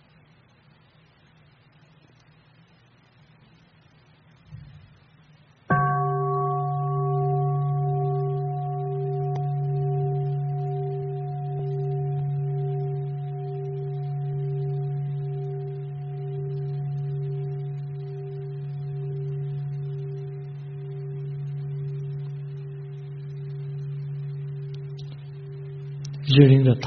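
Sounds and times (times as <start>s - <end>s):
deep meditation bell struck and resonating: 5.7s - 26.8s
speech: 26.4s - 26.8s.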